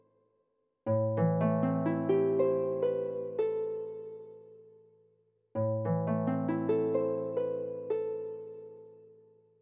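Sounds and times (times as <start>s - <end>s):
harp: 0.9s - 4.8s, 5.6s - 9.2s.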